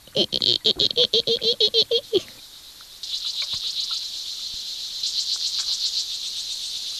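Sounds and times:
water boatman insect making a high cricket-like trill: 0.0s - 2.3s, 3.0s - 6.9s
person imitating a water boatman with rapid pulses: 0.0s - 2.4s.

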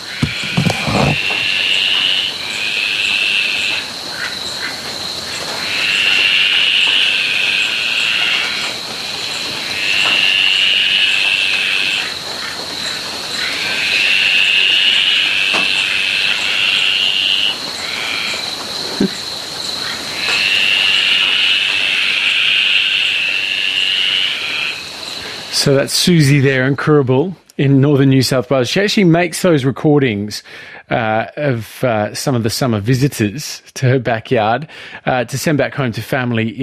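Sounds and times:
dense chorus of frogs calling in the rain: 0.0s - 26.7s
rain: 1.2s - 27.0s
speech: 25.7s - 36.6s.

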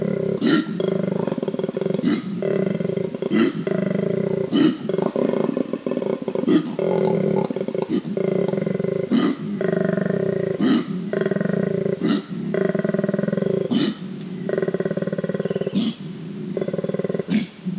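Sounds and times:
koala giving a long bellow of grunts and snorts: 0.0s - 17.7s.

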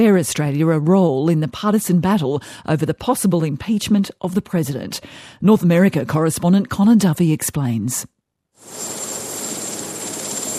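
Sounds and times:
speech: 0.0s - 8.8s
presidential helicopter engine and rotor roar: 8.7s - 10.5s.

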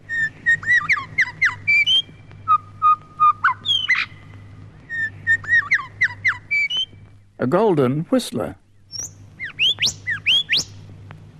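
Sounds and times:
grey shrike-thrush calling: 0.0s - 7.4s, 8.8s - 11.3s
steady low hum: 0.0s - 11.3s
eastern whipbird calling: 0.1s - 7.0s, 8.9s - 10.8s
speech: 7.4s - 8.6s.

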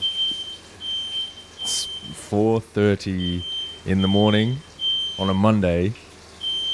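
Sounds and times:
smoke alarm beeping: 0.0s - 2.3s, 3.1s - 5.5s, 6.4s - 6.7s
speech: 1.7s - 6.0s.

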